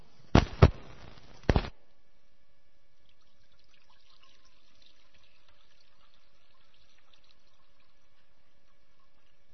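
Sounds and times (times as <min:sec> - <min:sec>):
water poured into a baptismal font splashing: 0:03.0 - 0:09.5.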